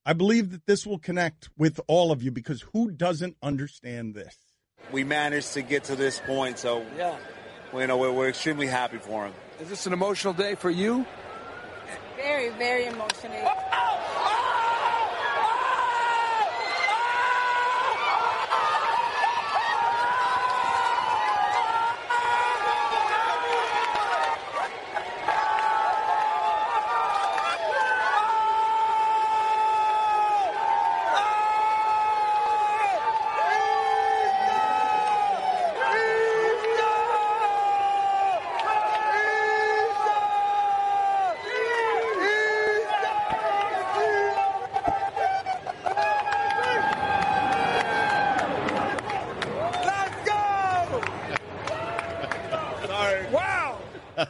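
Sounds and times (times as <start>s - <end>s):
speech: 0.0s - 11.3s, 12.2s - 14.4s
dense roar of crowd noise: 4.8s - 54.2s
raised voices shouting and whooping: 13.2s - 53.9s.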